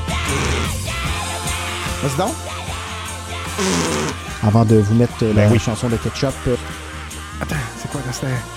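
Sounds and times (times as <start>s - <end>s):
kazoo buzzing through a distortion pedal: 0.1s - 1.1s, 3.4s - 4.4s
speech: 2.0s - 2.5s, 3.6s - 6.8s, 7.4s - 8.5s.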